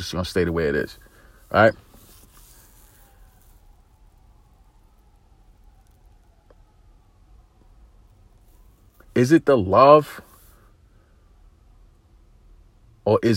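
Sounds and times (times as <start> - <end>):
speech: 0.0 - 1.9, 9.2 - 10.3, 13.0 - 13.3
steady noise: 0.0 - 13.3
emergency siren wailing outside: 0.6 - 10.6.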